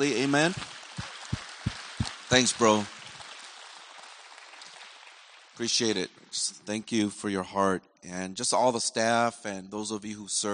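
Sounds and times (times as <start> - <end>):
speech: 0.0 - 0.8, 2.3 - 3.0, 5.6 - 10.5
large group applauding: 0.4 - 3.5.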